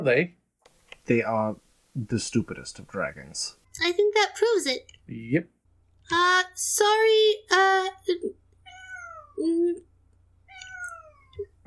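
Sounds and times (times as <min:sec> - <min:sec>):
speech: 0:00.0 - 0:00.4, 0:01.0 - 0:08.4, 0:09.4 - 0:09.9
cat meowing: 0:08.6 - 0:09.4, 0:10.5 - 0:11.5.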